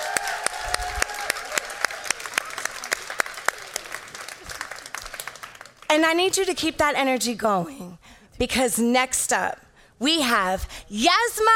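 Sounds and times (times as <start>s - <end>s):
audience clapping: 0.0s - 6.0s
speech: 6.0s - 11.5s.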